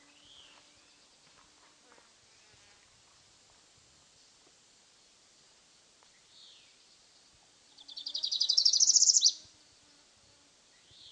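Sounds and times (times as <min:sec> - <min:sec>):
tropical parula Setophaga pitiayumi pulchra buzzy trill: 0:07.7 - 0:09.4.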